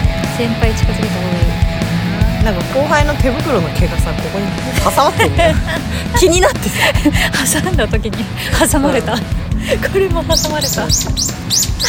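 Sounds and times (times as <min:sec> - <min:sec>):
people chatting: 0:00.0 - 0:01.6, 0:02.4 - 0:11.3
birds chirping outdoors: 0:00.0 - 0:11.8
speech: 0:00.4 - 0:01.8, 0:02.4 - 0:11.8
people laughing: 0:04.4 - 0:10.2.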